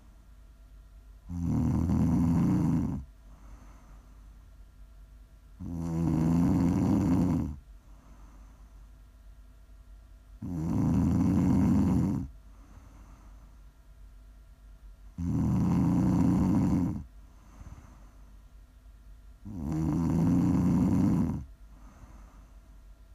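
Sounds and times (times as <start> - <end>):
person snoring with a buzzing rattle: 1.3 - 3.8, 5.6 - 7.6, 10.4 - 13.3, 15.2 - 18.1, 19.4 - 22.4
soft breath out: 3.2 - 4.4, 7.8 - 8.9, 12.4 - 13.7, 17.2 - 18.5, 21.6 - 22.9.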